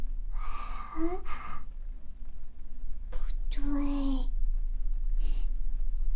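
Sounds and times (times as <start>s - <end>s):
low steady hum: 0.0s - 6.1s
heavy breathy exhalations: 0.4s - 1.7s
speech: 1.0s - 1.5s.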